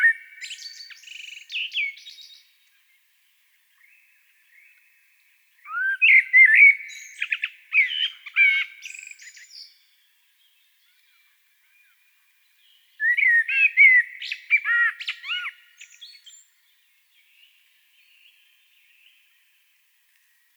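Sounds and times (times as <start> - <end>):
common blackbird Turdus merula singing: 0.0 - 2.5, 5.6 - 12.0, 12.6 - 19.2.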